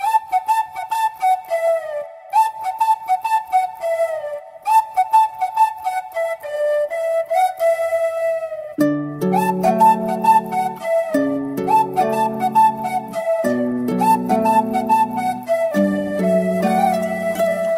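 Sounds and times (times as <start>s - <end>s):
background flute: 0.0s - 17.7s.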